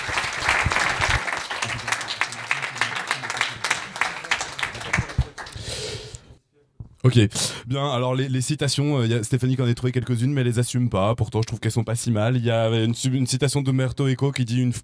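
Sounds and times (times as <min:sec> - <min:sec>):
audience applauding: 0:00.0 - 0:05.9
speech: 0:07.1 - 0:14.8.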